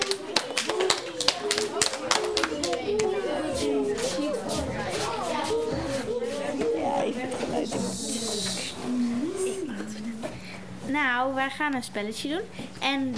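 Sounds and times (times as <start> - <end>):
small audience applauding: 0.0 - 3.3
children cheering: 0.0 - 3.8
children chattering: 0.0 - 10.3
speech: 11.5 - 13.1.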